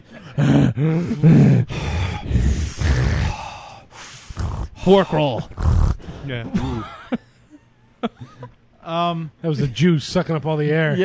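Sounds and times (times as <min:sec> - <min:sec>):
voice imitating heavy respirator-like breathing: 0:00.0 - 0:06.9
speech: 0:00.3 - 0:01.8, 0:04.8 - 0:05.6, 0:06.2 - 0:07.0, 0:08.9 - 0:11.0.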